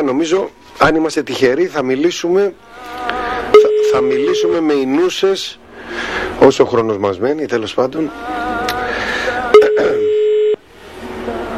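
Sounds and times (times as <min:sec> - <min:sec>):
speech: 0:00.0 - 0:03.2, 0:03.9 - 0:08.4
steady telephone line tone: 0:03.5 - 0:04.9, 0:09.5 - 0:10.6.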